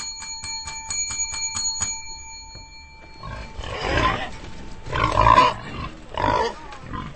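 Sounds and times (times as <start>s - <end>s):
brief ringing pulsing tone: 0.0s - 5.9s
pigs grunting and squealing: 3.3s - 7.1s.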